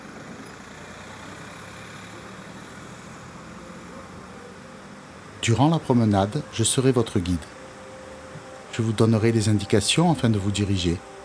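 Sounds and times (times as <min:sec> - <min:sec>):
car engine rumbling by: 0:00.0 - 0:08.7
speech: 0:05.5 - 0:07.6, 0:08.8 - 0:11.1.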